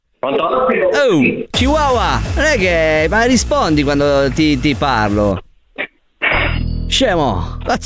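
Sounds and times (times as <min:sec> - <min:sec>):
speech: 0:00.2 - 0:05.4, 0:06.9 - 0:07.8
steady pure mid-pitched telephone tone: 0:01.6 - 0:05.3.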